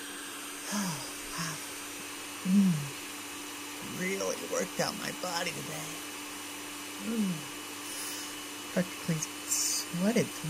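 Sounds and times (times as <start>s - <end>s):
blender whirring: 0.0s - 10.4s
brief low vocal murmurs: 0.7s - 1.6s, 2.4s - 3.0s, 7.0s - 7.5s
speech: 4.0s - 6.1s, 7.0s - 7.5s, 8.7s - 10.4s.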